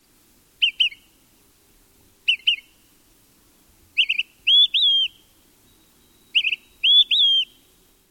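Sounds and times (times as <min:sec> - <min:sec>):
Olive-sided flycatcher whistled slurred phrases: 0:04.0 - 0:05.2, 0:06.1 - 0:07.6.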